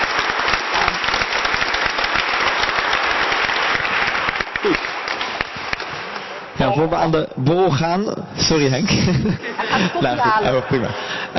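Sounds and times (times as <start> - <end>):
audience applauding the speakers: 0.0 - 6.5
speech: 6.7 - 11.3
laughter: 8.8 - 11.3.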